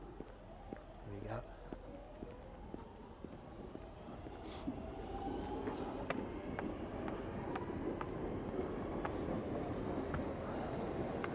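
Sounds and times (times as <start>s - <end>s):
speech: 1.1s - 1.7s
train pulling into a station rumbling on rails: 2.9s - 11.3s.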